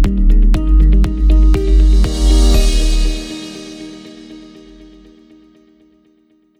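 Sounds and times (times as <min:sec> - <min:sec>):
corporate transition sound effect: 0:00.1 - 0:05.4.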